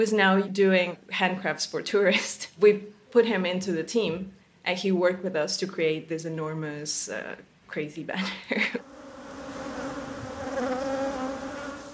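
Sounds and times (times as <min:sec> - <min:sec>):
speech: 0:00.0 - 0:08.9
honeybees buzzing in a sculpture park in Belize: 0:08.8 - 0:11.9.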